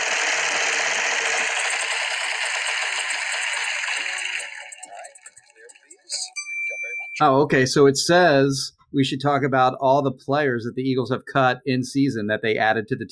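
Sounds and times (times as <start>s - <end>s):
prize wheel ratcheting clicks while spinning: 0.0s - 7.3s
speech: 7.2s - 13.1s.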